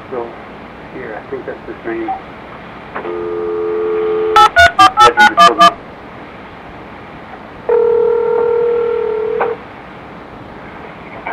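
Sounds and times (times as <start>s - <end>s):
speech: 0.1s - 3.6s, 5.2s - 5.8s
telephone dial tone: 3.0s - 5.7s, 7.7s - 9.6s
touch-tone keypad beeps: 4.4s - 5.8s.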